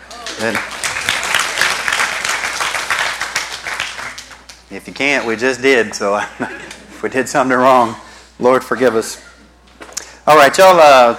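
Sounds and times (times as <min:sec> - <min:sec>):
congregation applauding: 0:00.0 - 0:04.7
speech: 0:00.4 - 0:00.8, 0:04.7 - 0:09.3, 0:10.3 - 0:11.1.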